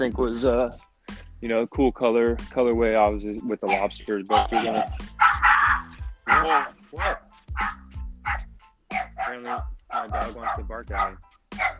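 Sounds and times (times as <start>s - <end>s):
speech: 0.0s - 5.2s, 6.4s - 7.2s, 9.4s - 11.7s
dog barking at its owner with sharp high yips: 3.6s - 11.7s.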